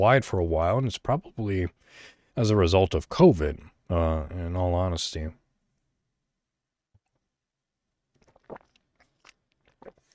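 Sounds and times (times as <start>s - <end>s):
speech: 0.0s - 5.4s
person sipping and swallowing water: 8.1s - 10.1s.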